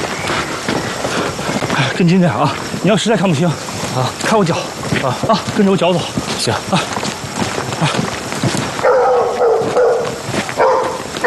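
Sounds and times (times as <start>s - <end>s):
busy noisy background: 0.0s - 11.2s
speech: 2.0s - 7.0s
dog barking and howling: 8.8s - 11.2s.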